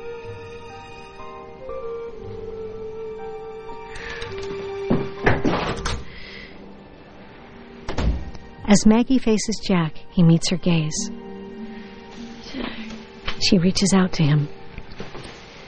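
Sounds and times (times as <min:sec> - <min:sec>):
steady, sustained musical drone: 0:00.0 - 0:15.6
house front door opening and closing: 0:03.9 - 0:06.3, 0:07.9 - 0:08.5
front door thud: 0:04.9 - 0:06.1, 0:07.9 - 0:08.4
front door latch clicks: 0:05.3 - 0:06.1
speech: 0:08.7 - 0:11.2, 0:13.4 - 0:14.6.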